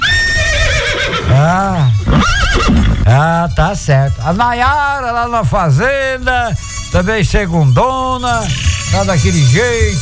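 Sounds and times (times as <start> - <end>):
horse neighing: 0.0 - 3.2
steady broadband noise: 1.3 - 9.9
speech: 3.4 - 9.9.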